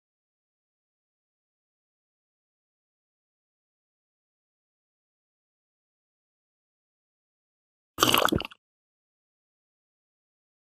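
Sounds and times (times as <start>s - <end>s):
conductor gulping: 8.0s - 8.6s.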